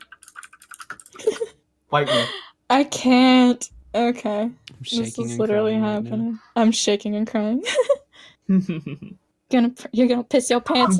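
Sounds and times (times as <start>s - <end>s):
rapid clattery typing on mechanical keyboards: 0.0s - 1.2s
speech: 1.9s - 10.9s.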